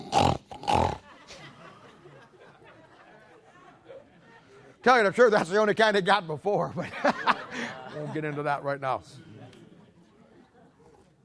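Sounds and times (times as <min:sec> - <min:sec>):
pig grunting and oinking: 0:00.0 - 0:01.0
laughter: 0:00.9 - 0:05.8, 0:06.6 - 0:11.2
speech: 0:04.8 - 0:07.4, 0:08.0 - 0:09.3.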